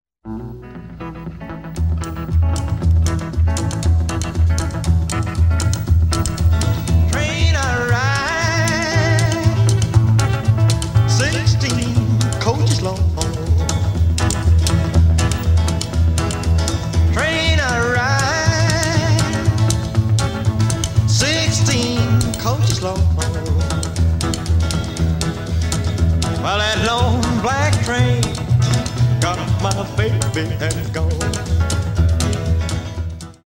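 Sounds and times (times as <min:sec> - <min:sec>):
homophonic music: 0:00.3 - 0:33.4.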